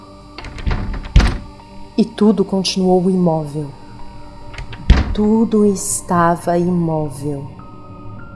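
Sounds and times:
locked door thudding against the frame as someone tries it: 0:00.4 - 0:01.6, 0:04.4 - 0:05.5
speech: 0:02.0 - 0:03.8, 0:05.2 - 0:07.6.

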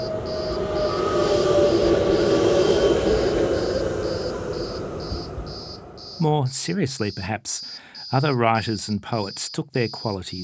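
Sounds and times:
electric tram rumbling along its rails: 0:00.0 - 0:06.8
speech: 0:06.2 - 0:10.4.

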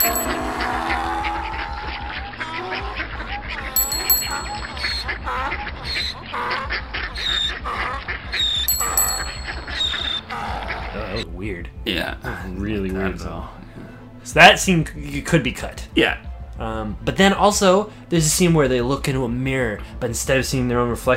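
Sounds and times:
bell on a unicycle wheel ringing: 0:00.0 - 0:00.6, 0:03.8 - 0:05.0, 0:08.7 - 0:10.1
steady low rhythmic pulse: 0:00.0 - 0:05.8, 0:06.8 - 0:12.6
ducks quacking: 0:00.1 - 0:11.2
speech: 0:11.9 - 0:13.6, 0:14.3 - 0:21.1.

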